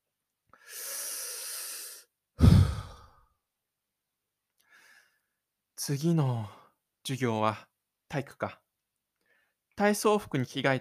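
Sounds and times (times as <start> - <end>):
young man taking a deep breath: 0.5 - 3.3, 4.6 - 5.4, 9.2 - 9.6
speech: 5.8 - 8.6, 9.8 - 10.7.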